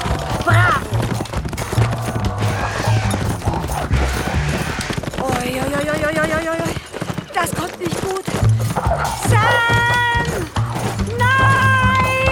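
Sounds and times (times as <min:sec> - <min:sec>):
hoofbeats of a galloping ridden horse: 0:00.0 - 0:12.2
voices shouting: 0:02.4 - 0:05.0, 0:08.9 - 0:12.2.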